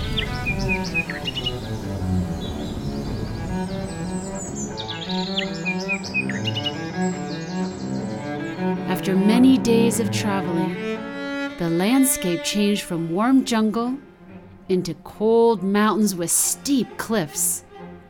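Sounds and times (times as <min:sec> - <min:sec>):
birds singing cheerfully with chirps and warbling phrases: 0:00.0 - 0:10.9
speech: 0:09.0 - 0:14.1, 0:14.7 - 0:17.7.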